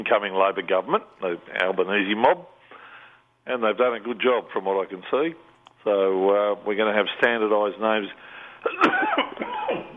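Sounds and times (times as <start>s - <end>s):
speech: 0.0s - 2.6s, 3.4s - 9.0s
cough: 8.6s - 9.9s.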